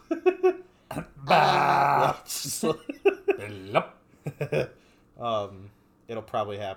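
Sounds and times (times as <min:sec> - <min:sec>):
person burping: 0:00.9 - 0:02.5
speech: 0:01.3 - 0:06.7.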